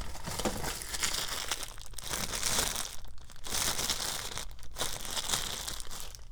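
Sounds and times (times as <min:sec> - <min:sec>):
rummaging in a toolbox: 0:00.0 - 0:01.5
plastic crinkling: 0:00.0 - 0:06.3.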